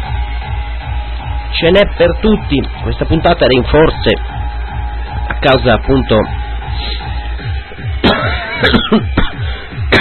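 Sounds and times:
steady low rhythmic music bed: 0.0s - 9.9s
speech: 1.6s - 4.3s, 5.4s - 6.4s, 8.6s - 9.2s
harsh loud coughing: 8.0s - 9.9s.

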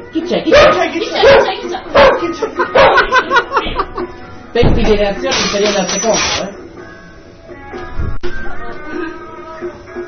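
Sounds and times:
speech: 0.1s - 3.9s, 4.5s - 6.6s
dog barking: 0.5s - 3.1s
laughter-like vocal sounds: 1.0s - 4.2s.

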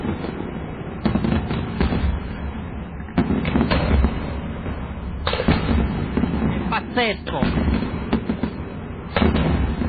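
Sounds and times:
battery of firework rockets fired one after another, hissing roar: 0.0s - 9.8s
firework rocket pops and cracks: 1.0s - 2.4s, 3.0s - 4.4s, 5.2s - 9.8s
speech: 7.0s - 7.6s.

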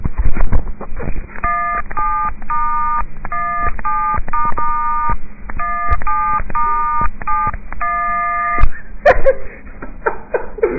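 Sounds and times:
faint hum: 0.0s - 10.7s
well-known tune tapped out on phone keypad tones: 1.4s - 8.8s.

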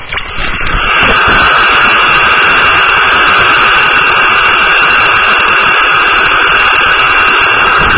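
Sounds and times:
loud steady radio static hiss with faint crackling: 0.0s - 7.9s.

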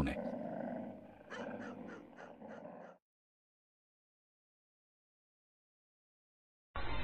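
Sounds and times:
dogs growling and barking: 0.0s - 3.0s.

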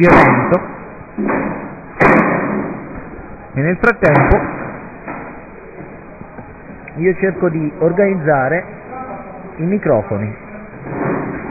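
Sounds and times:
speech: 0.0s - 1.3s, 3.6s - 4.6s, 7.0s - 8.8s, 9.6s - 11.0s
chairs thudding and rattling as they are handed out: 0.0s - 3.1s, 4.0s - 6.4s, 10.8s - 11.4s.

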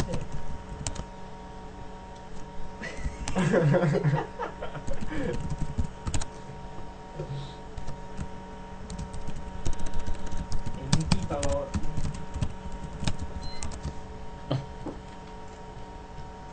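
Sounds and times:
document being typed on a computer keyboard: 0.0s - 1.1s, 4.8s - 6.3s, 8.9s - 13.9s
person chuckling: 2.8s - 5.5s, 14.5s - 14.7s
speech: 3.4s - 4.4s.

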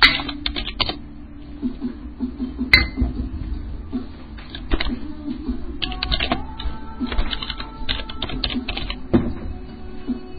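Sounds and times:
low steady hum: 0.0s - 10.3s
fingers typing on an Austrian computer keyboard: 0.1s - 1.0s, 5.8s - 6.4s, 7.0s - 9.0s.

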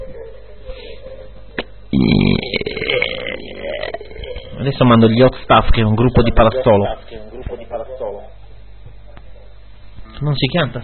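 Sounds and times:
loud drawn-out burping: 1.9s - 4.6s
speech: 4.7s - 7.3s, 10.2s - 10.8s.

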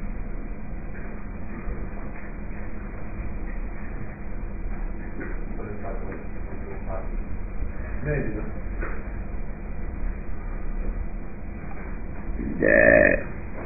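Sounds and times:
murmur of room noise: 0.0s - 13.6s
speech: 8.0s - 8.6s
short loud throaty burp: 12.4s - 13.4s.

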